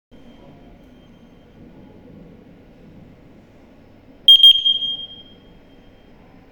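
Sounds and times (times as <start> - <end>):
smoke detector fault signal: 4.3 - 6.2.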